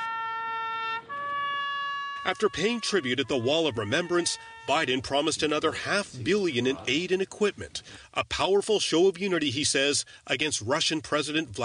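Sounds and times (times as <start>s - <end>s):
air raid siren blaring: 0.0s - 5.7s
speech: 2.2s - 11.6s.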